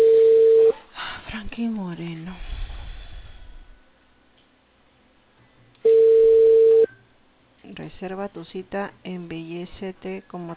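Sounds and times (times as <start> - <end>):
steady telephone tone as a call is placed to a cable company: 0.0 - 0.8, 5.8 - 7.0
speech: 8.0 - 10.5.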